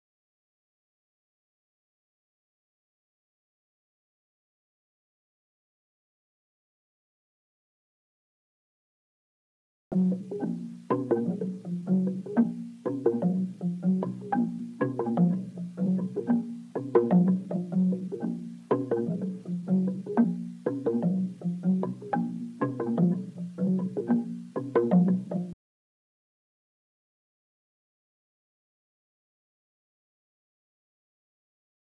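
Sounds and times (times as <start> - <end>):
low mallets loop in A sharp minor: 9.9 - 25.6.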